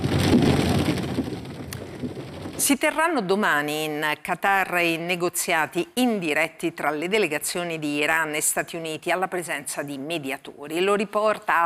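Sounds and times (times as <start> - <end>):
heavy rain in a thunderstorm: 0.0 - 2.6
speech: 2.7 - 11.6.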